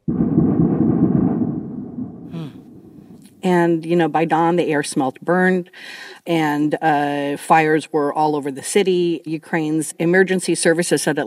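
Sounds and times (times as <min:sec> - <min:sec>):
heavy deep explosion from missile strike: 0:00.0 - 0:03.4
speech: 0:03.4 - 0:11.2.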